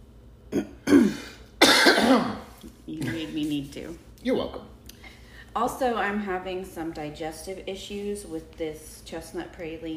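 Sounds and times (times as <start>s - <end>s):
person clearing throat: 0.5s - 3.3s
speech: 3.4s - 4.7s, 5.6s - 9.9s.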